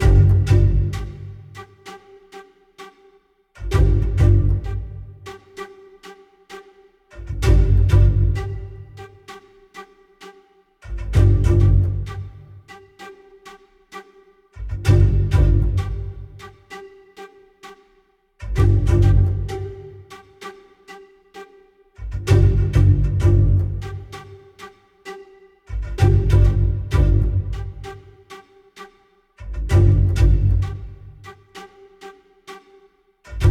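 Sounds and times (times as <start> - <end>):
ambient music: 0.0 - 33.4.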